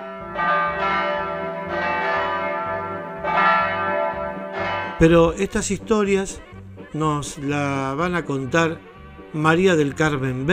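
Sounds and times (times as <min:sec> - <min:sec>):
church bells ringing: 0:00.0 - 0:06.4
speech: 0:05.0 - 0:10.5.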